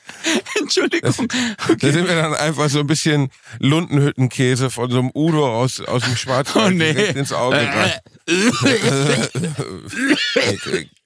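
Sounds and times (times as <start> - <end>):
laughter: 0.2 - 2.1, 5.9 - 10.9
speech: 0.3 - 11.0
person coughing and hacking: 7.5 - 10.9.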